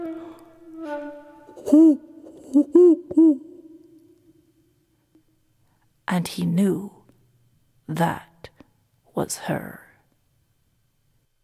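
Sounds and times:
owl hooting: 0.0s - 4.2s
speech: 1.7s - 3.4s, 6.1s - 7.0s, 7.9s - 8.3s, 9.2s - 9.8s.

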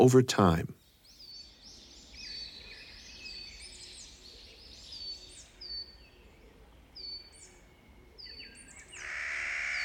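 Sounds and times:
speech: 0.0s - 0.8s
Clark's nutcracker calling in grating bursts: 9.0s - 9.8s.

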